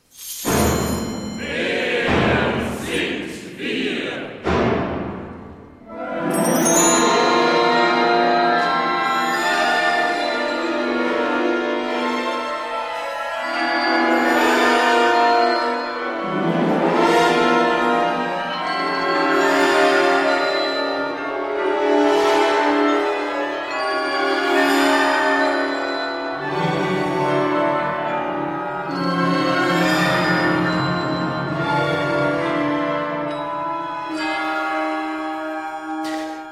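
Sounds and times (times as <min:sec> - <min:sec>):
sharp ringing percussive strikes in contemporary orchestral music: 0:00.3 - 0:08.8
contemporary oratorio orchestral music with dense sustained chords: 0:00.6 - 0:36.5.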